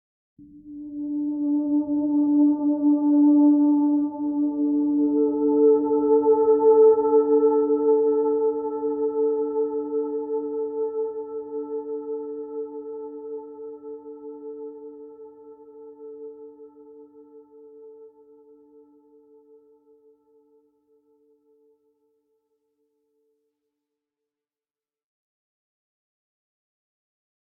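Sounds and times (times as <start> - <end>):
ambient music interlude: 0.4 - 20.1.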